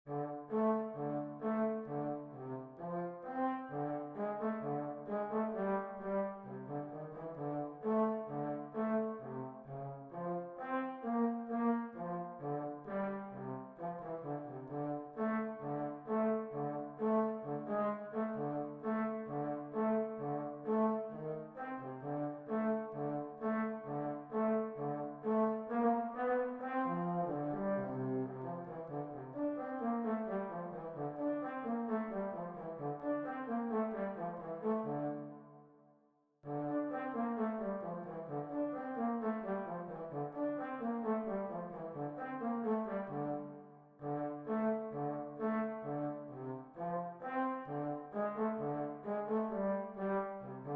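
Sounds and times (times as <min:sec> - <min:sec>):
trombone: 0:00.1 - 0:35.4, 0:36.5 - 0:50.7.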